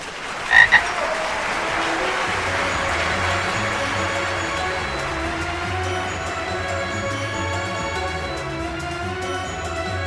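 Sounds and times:
laughter: 0:00.0 - 0:10.0
frog croaking with short nasal calls: 0:00.5 - 0:00.8.

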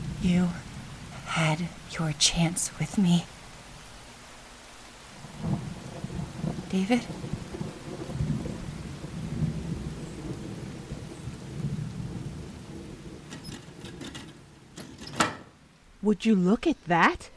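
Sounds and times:
steady rain: 0:00.0 - 0:17.3
speech: 0:00.2 - 0:00.7, 0:01.3 - 0:03.4, 0:06.7 - 0:07.3, 0:16.0 - 0:17.3
deep rolling rumble of thunder: 0:05.2 - 0:15.7.

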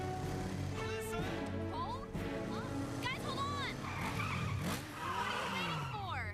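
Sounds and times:
motorcycle engines revving: 0:00.0 - 0:06.3
motorcycle tires squealing in skids: 0:02.8 - 0:06.3.

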